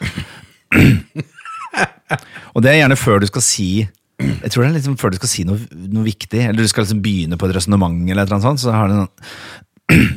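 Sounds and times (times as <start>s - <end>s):
voice imitating throat clearing: 0.0s - 1.2s, 4.2s - 4.5s, 9.9s - 10.1s
speech: 2.1s - 10.1s.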